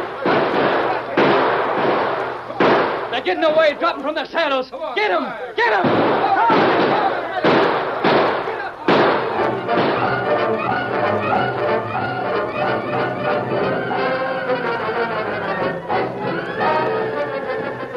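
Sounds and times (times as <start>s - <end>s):
gunshots from a gunfight: 0.0s - 4.0s, 5.7s - 14.8s
commotion: 0.0s - 17.6s
speech: 3.2s - 6.8s
people shouting: 5.2s - 17.9s.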